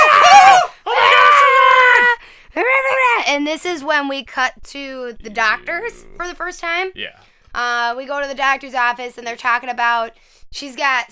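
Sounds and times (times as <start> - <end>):
people screaming in a film scene: 0.0 - 3.2
speech: 3.5 - 11.1.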